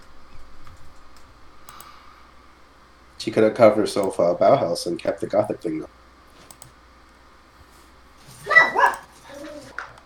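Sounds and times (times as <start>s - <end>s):
speech: 3.2s - 6.0s
dog whining: 8.3s - 10.0s
dog barking: 8.4s - 9.7s.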